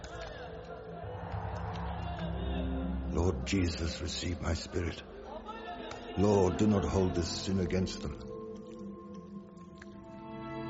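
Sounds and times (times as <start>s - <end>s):
large angry crowd roaring and shouting: 0.0s - 3.1s
speech: 3.2s - 5.1s, 6.2s - 8.3s.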